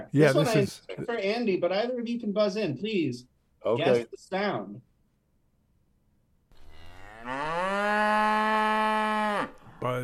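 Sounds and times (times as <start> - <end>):
speech: 0.0 - 4.9, 9.8 - 10.0
tip-over cow toy turned upside down mooing: 6.6 - 9.7.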